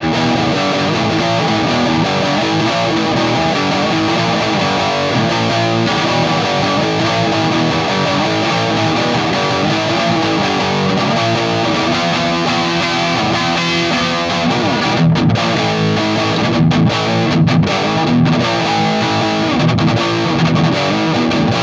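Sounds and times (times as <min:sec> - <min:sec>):
punk rock music: 0:00.0 - 0:21.6.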